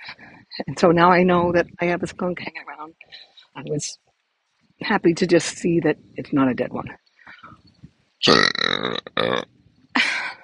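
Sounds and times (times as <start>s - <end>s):
speech: 0.6s - 4.0s, 4.8s - 7.6s, 8.2s - 9.1s
gurgling burp outdoors: 8.2s - 9.5s.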